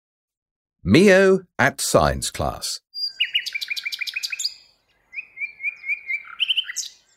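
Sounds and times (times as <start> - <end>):
speech: 0.8 - 2.8
birds chirping: 3.0 - 7.1.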